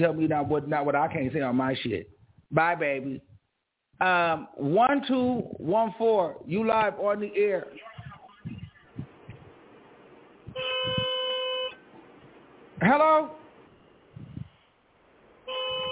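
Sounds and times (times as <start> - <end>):
speech: 0.0 - 3.3, 4.0 - 8.6, 12.8 - 13.4
car horn honking: 10.5 - 11.8, 15.4 - 15.9.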